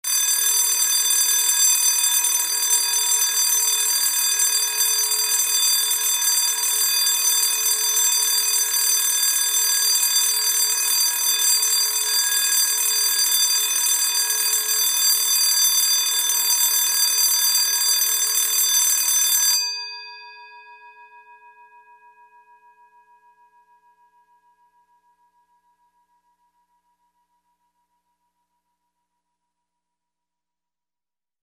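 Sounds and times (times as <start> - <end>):
school bell ringing: 0.1 - 20.1.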